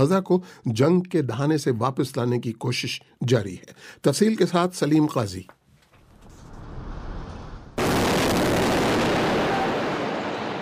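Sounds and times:
speech: 0:00.0 - 0:05.6
low rumble: 0:06.1 - 0:07.8
airstrike explosion from an Israeli strike on Gaza: 0:06.5 - 0:10.6.

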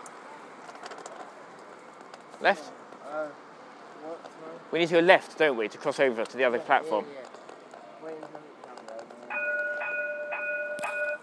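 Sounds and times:
speech: 0:02.4 - 0:07.4, 0:08.0 - 0:08.6
level crossing warning bell ringing: 0:09.3 - 0:11.2.

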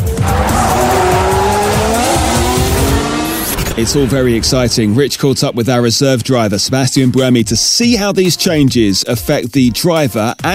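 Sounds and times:
Formula One power unit engine revving: 0:00.0 - 0:05.0
speech: 0:03.8 - 0:10.5.

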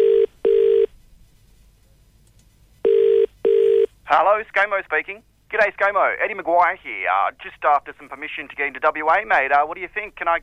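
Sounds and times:
phone ringing with a steady electronic tone in a double-burst pattern: 0:00.0 - 0:00.9, 0:02.8 - 0:03.9
speech: 0:04.1 - 0:10.4.

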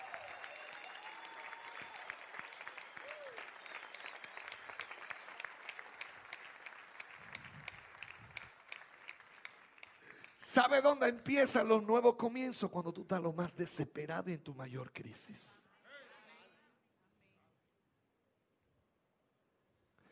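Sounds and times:
audience applauding loudly: 0:00.0 - 0:11.1
speech: 0:10.6 - 0:15.6.

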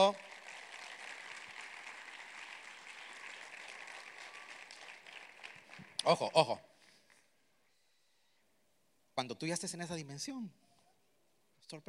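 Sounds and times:
speech: 0:00.0 - 0:00.3, 0:06.0 - 0:06.7, 0:09.2 - 0:10.7, 0:11.7 - 0:11.8
crowd applauding: 0:00.0 - 0:07.2.

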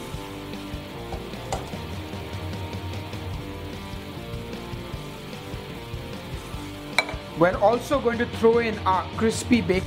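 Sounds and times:
chana sizzling in a covered pan of gravy: 0:00.0 - 0:07.7
speech: 0:07.4 - 0:09.8.

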